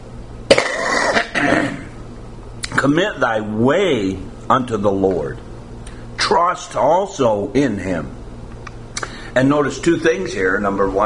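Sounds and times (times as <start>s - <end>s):
person coughing after taking a cough drop: 0.5s - 1.9s
speech: 2.8s - 5.4s, 6.3s - 8.2s, 9.4s - 11.0s.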